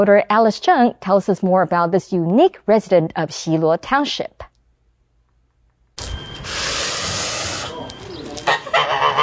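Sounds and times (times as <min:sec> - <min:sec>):
speech: 0:00.0 - 0:04.5
goose warning call in Guangxing village, Xiluo Township, western Taiwan: 0:06.5 - 0:09.2.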